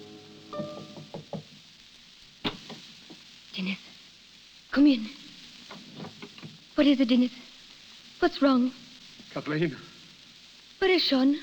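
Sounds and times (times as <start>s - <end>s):
man knocking quietly on a wooden door: 0.6s - 1.6s
speech: 3.6s - 3.9s, 4.7s - 5.2s, 6.8s - 7.5s, 8.2s - 9.9s, 10.8s - 11.4s.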